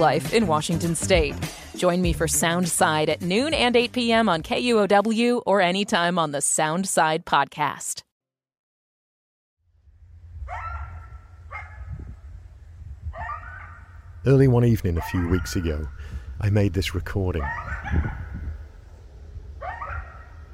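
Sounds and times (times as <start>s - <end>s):
speech: 0.0s - 8.1s, 14.2s - 18.2s
steady low outdoor rumble: 9.7s - 20.5s
coyotes yipping and barking in a rural area on the edge of Bellingham, Washington State: 10.5s - 12.2s, 13.1s - 14.2s, 14.9s - 16.0s, 17.4s - 18.9s, 19.6s - 20.5s.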